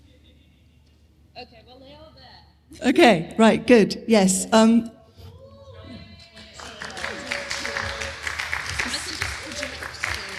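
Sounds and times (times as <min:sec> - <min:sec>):
speech: 0:01.4 - 0:05.0
audience clapping: 0:06.5 - 0:10.3.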